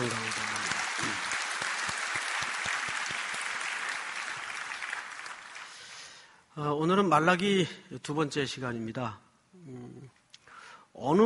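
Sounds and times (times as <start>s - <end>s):
church congregation clapping: 0.0s - 6.2s
speech: 6.6s - 9.8s, 11.0s - 11.2s.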